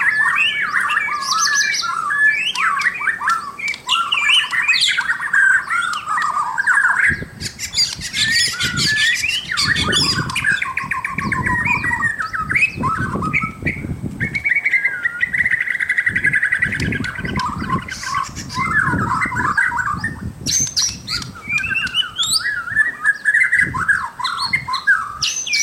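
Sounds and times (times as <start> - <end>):
White-rumped shama pouring out quick chattering and whistled phrases: 0.0 - 25.6.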